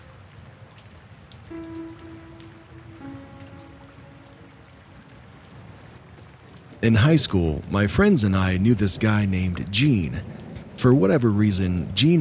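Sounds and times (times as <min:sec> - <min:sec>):
steady rain falling: 0:00.0 - 0:12.1
speech: 0:01.5 - 0:02.3, 0:06.8 - 0:12.1
long low droning tones: 0:01.5 - 0:06.4.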